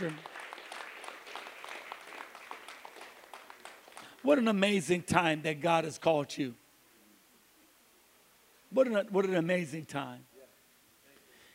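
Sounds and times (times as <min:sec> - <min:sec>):
speech: 0:00.0 - 0:00.3, 0:04.2 - 0:06.6, 0:08.8 - 0:10.3
congregation clapping hands: 0:00.0 - 0:04.3.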